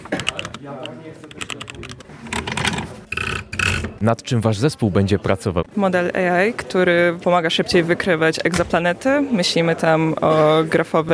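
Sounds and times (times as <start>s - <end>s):
typing on a computer keyboard: 0.0s - 3.8s
speech: 0.6s - 3.1s, 4.0s - 11.1s.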